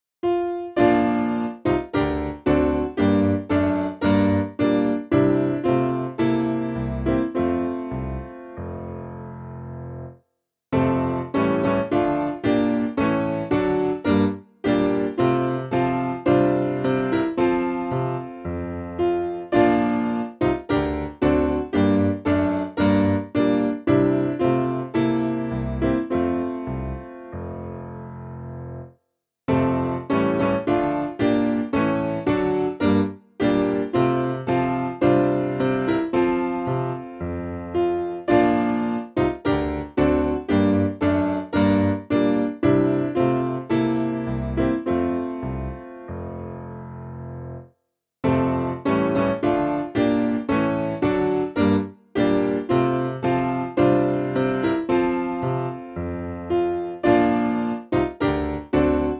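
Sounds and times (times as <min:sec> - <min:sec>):
piano piece: 0:00.0 - 0:59.1.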